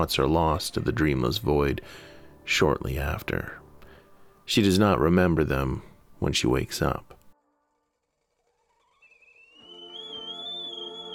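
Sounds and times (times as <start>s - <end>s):
speech: 0.0s - 3.6s, 4.5s - 7.2s
kettle whistle shrieking: 8.2s - 11.1s.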